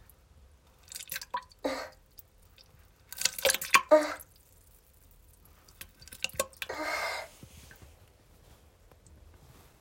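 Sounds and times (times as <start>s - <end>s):
urinating into a toilet: 0.7s - 7.1s.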